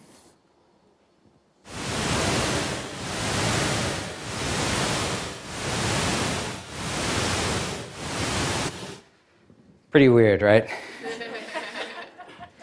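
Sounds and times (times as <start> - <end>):
pulsed pink noise bursts stimulating deep sleep: 1.7 - 9.1
speech: 10.0 - 10.9
laughter: 10.8 - 12.6.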